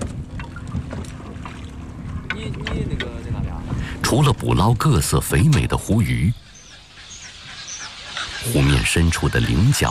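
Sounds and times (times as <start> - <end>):
wind buffeting the microphone: 0.0 - 4.7
lake water splashing around the boat hull: 0.0 - 5.9
fishing boat motor droning on a lake: 0.0 - 7.0
speech: 4.1 - 6.4, 8.4 - 9.9.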